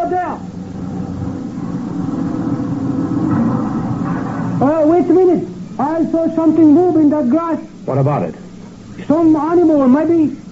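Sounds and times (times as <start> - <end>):
steady low truck engine rumble: 0.4 - 6.9
speech: 5.4 - 8.4, 9.0 - 10.4.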